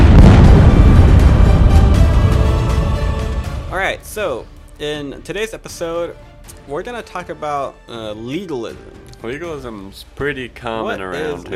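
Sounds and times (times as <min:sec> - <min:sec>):
bomb explosion sound effect: 0:00.0 - 0:04.1
speech: 0:04.2 - 0:11.5.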